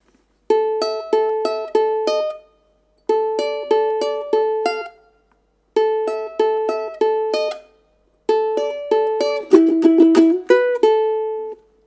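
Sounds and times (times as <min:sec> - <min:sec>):
ukulele riff: 0:00.5 - 0:11.8.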